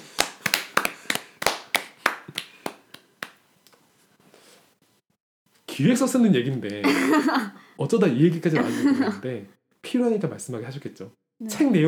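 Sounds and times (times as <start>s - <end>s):
hands clapping: 0.0s - 3.8s
speech: 5.8s - 11.8s
laughter: 6.8s - 7.6s, 8.5s - 9.4s.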